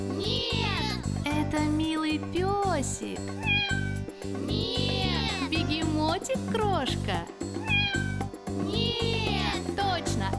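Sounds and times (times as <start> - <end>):
steady bouncy musical backing: 0.0 - 10.3
speech: 2.1 - 7.6
cat meowing: 3.3 - 5.5, 7.6 - 9.6.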